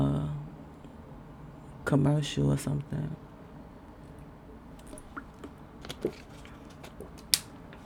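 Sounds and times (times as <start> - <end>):
speech: 1.9 - 3.3, 6.0 - 6.3
faint plastic bottle crinkles: 4.8 - 7.5
sipping spring water from a plastic water bottle: 4.8 - 7.5
sharp plastic crackle: 4.9 - 7.5.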